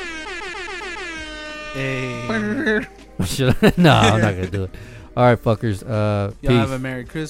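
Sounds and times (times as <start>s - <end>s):
loud blaring air horn blast: 0.0s - 2.4s
speech: 1.8s - 7.2s
laughter: 2.3s - 4.7s.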